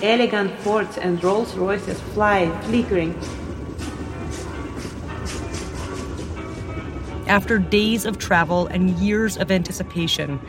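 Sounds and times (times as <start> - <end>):
speech: 0.0 - 3.4, 7.3 - 10.4
train rolling with a continuous low rumble: 0.0 - 10.4
train wheels clickety-clacking over rail joints: 1.5 - 8.3.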